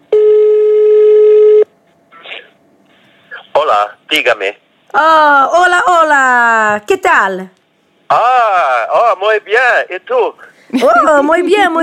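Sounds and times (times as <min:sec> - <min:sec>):
electronic telephone tone while a call is dialed: 0:00.1 - 0:01.7
speech: 0:03.7 - 0:11.8.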